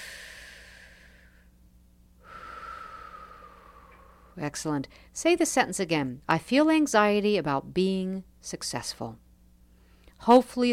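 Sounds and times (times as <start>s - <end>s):
slow deep breath during a tapping exercise: 0.0s - 1.5s, 2.2s - 5.2s, 9.7s - 10.2s
speech: 4.4s - 9.2s, 10.2s - 10.7s.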